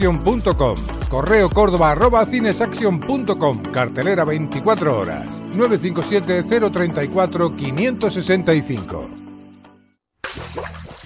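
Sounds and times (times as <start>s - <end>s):
speech: 0.0s - 9.2s
water dripping from a leak: 10.2s - 11.0s.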